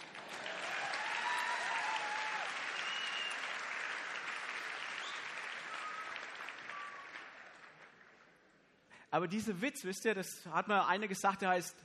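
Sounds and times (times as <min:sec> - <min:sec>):
crowd applauding: 0:00.0 - 0:08.7
faint whistles from a crowd: 0:02.8 - 0:03.4, 0:05.0 - 0:07.2
speech: 0:09.1 - 0:11.8.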